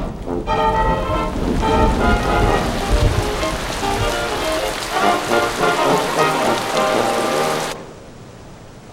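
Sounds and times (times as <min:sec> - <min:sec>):
heavy rain drumming on a hard surface: 0:00.0 - 0:08.9.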